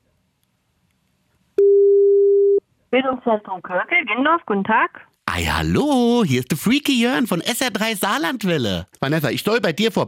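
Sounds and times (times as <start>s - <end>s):
telephone ringback tone on an outgoing call to a training centre: 1.6s - 2.6s
speech: 2.9s - 10.0s.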